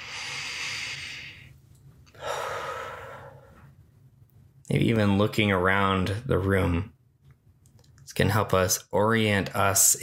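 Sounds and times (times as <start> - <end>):
slow deep breath during a guided meditation: 0.0 - 3.7
speech: 4.7 - 7.0, 8.2 - 10.0.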